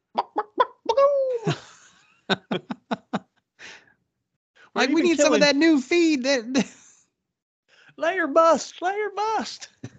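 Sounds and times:
person imitating chickens clucking and squawking: 0:00.1 - 0:01.4
laughter: 0:01.3 - 0:03.3
speech: 0:04.8 - 0:06.8, 0:08.2 - 0:09.7.

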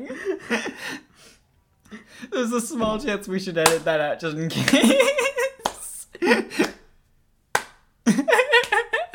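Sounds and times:
speech: 0:00.1 - 0:01.1, 0:02.4 - 0:05.5
sharp hand claps: 0:03.6 - 0:03.9, 0:04.6 - 0:09.1.

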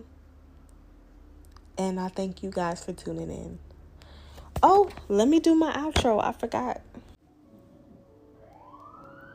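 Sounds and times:
speech: 0:01.8 - 0:03.7, 0:04.6 - 0:07.0
emergency vehicle siren wailing: 0:08.3 - 0:09.3.

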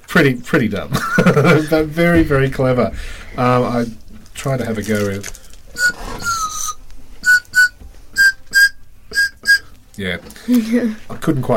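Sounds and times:
speech: 0:00.1 - 0:06.0, 0:10.0 - 0:11.5
laughter: 0:00.9 - 0:01.9
whistle pop candy whistle tooting: 0:05.7 - 0:09.7.

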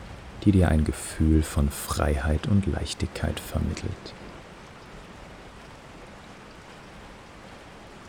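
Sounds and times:
ocean surf in stormy weather: 0:00.0 - 0:06.1
wind in stormy weather: 0:00.0 - 0:08.0
speech: 0:00.4 - 0:04.2.

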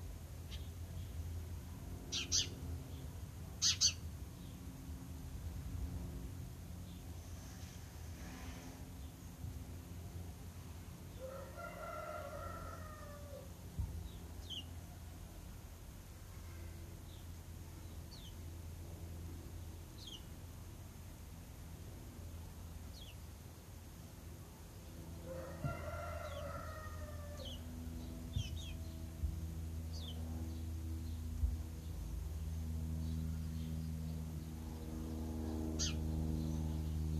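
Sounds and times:
low engine hum: 0:00.0 - 0:37.1
low rumble of city traffic: 0:00.0 - 0:37.1
bird, likely a rooster or fowl, calling: 0:11.2 - 0:13.6, 0:25.2 - 0:27.8.

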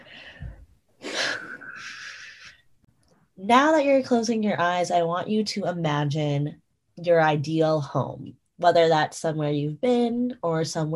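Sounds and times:
deep breath in during an eyes-closed group exercise: 0:00.0 - 0:02.4
speech: 0:03.4 - 0:10.9.

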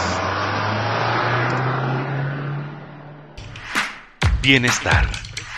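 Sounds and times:
car engine running and revving: 0:00.0 - 0:04.2
speech: 0:04.4 - 0:05.3.

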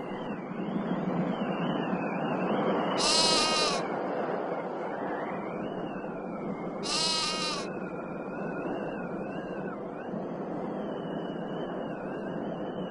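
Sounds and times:
rumble of outdoor noise: 0:00.0 - 0:12.9
goat bleating: 0:03.0 - 0:03.8, 0:06.8 - 0:07.7.

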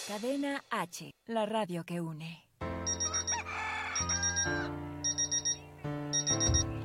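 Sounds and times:
speech: 0:00.1 - 0:02.5
quick bursts of electronic beeping: 0:02.9 - 0:03.3, 0:04.0 - 0:06.7
loud drawn-out rooster crow: 0:02.9 - 0:04.7.

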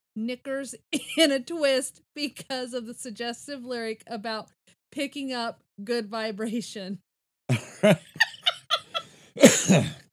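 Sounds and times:
speech: 0:00.2 - 0:08.3, 0:09.4 - 0:10.0
laughter: 0:07.5 - 0:10.0
person coughing: 0:09.4 - 0:10.1.

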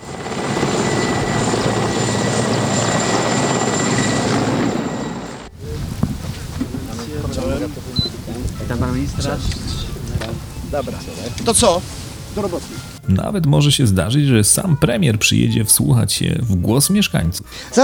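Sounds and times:
helicopter rotor and engine: 0:00.0 - 0:11.8
speech: 0:09.2 - 0:09.6, 0:10.7 - 0:17.8.

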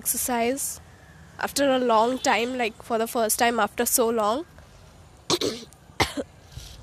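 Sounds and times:
speech: 0:00.0 - 0:04.6, 0:05.4 - 0:06.3
sharp coughs: 0:05.3 - 0:06.3.

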